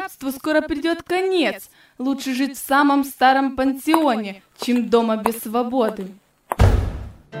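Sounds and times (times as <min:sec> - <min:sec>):
speech: 0:00.1 - 0:06.2
heavy door slamming as a person walks out: 0:06.5 - 0:07.2.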